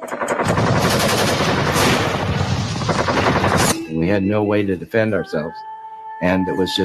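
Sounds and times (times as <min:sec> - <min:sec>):
machine gun fire from jets and motor torpedo boats strafing a ship: 0:00.0 - 0:03.9
cannon fire from jets and motor torpedo boats strafing a ship: 0:00.3 - 0:03.8
speech: 0:04.1 - 0:06.8.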